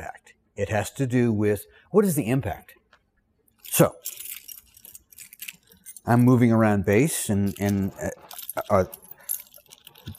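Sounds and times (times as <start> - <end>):
speech: 0.6 - 2.8, 3.7 - 4.2, 6.0 - 9.0
keys for military base buildings jangling on a ring: 3.5 - 10.1.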